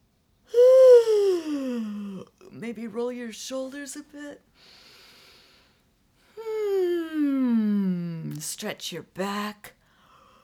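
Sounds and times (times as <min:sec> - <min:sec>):
person yawning while stretching as a warm-up before singing: 0:00.5 - 0:02.3, 0:06.4 - 0:08.1
speech: 0:02.6 - 0:04.8, 0:08.4 - 0:09.8.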